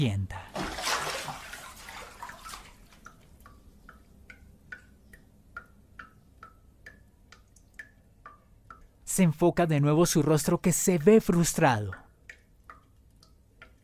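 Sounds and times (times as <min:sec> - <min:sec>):
speech: 0:00.0 - 0:00.4, 0:09.2 - 0:12.0
water splashing: 0:00.5 - 0:03.3
faucet dripping into water: 0:01.5 - 0:13.8.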